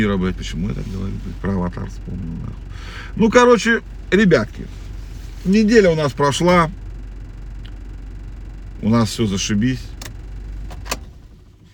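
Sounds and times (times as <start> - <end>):
speech: 0.0 - 4.8, 5.4 - 6.8, 8.8 - 9.9
car engine idling: 0.0 - 11.7
sharp clicks: 9.9 - 11.1.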